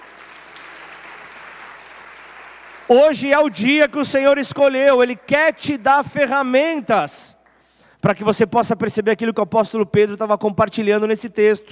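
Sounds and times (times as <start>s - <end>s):
audience clapping hands: 0.0s - 6.0s
speech: 2.9s - 7.4s, 8.0s - 11.7s.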